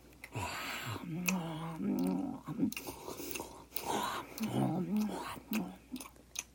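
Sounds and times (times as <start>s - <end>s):
voice groaning and growling imitating a feeding zombie: 0.4s - 2.8s, 3.9s - 5.8s
wet chewing and biting zombie ASMR eating sounds: 1.0s - 6.5s.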